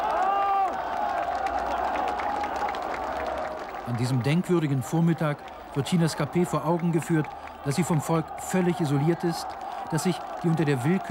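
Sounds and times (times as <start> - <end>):
large crowd roaring: 0.0 - 3.8, 6.0 - 11.0
cheering voices: 0.0 - 11.0
scattered clapping: 0.0 - 11.0
speech: 3.9 - 11.0.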